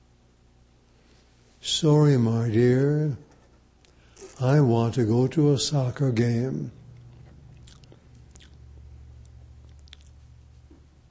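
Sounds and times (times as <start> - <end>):
steady low hum: 0.0 - 11.1
speech: 1.6 - 3.3, 4.4 - 6.8
person chewing and swallowing food with soft crunches: 6.8 - 10.9.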